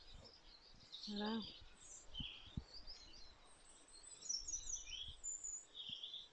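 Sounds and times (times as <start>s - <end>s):
birdsong in flooded woodland: 0.0s - 6.3s
soft voices: 1.1s - 1.5s.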